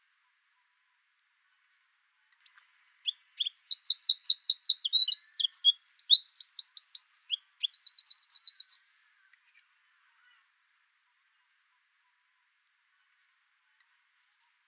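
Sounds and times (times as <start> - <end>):
Eurasian wren Troglodytes troglodytes troglodytes singing: 2.4 - 8.9.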